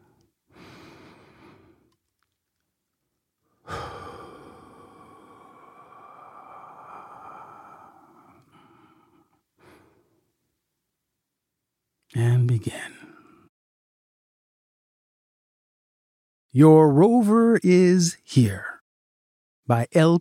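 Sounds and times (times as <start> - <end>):
person taking a slow deep breath: 0.0 - 1.9, 3.4 - 10.3
speech: 12.2 - 13.0, 16.6 - 18.7, 19.7 - 20.1.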